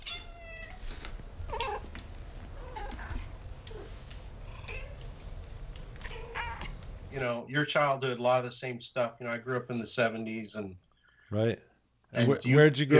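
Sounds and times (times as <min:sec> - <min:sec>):
cats meowing: 0:00.0 - 0:06.9
steady low rumble: 0:00.2 - 0:07.3
speech: 0:07.2 - 0:12.9.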